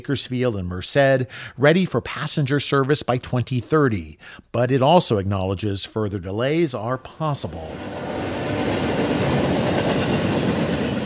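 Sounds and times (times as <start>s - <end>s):
speech: 0.0s - 9.4s
slow-moving freight train passing: 7.1s - 11.0s
freight train wheels clattering on track: 8.0s - 11.0s.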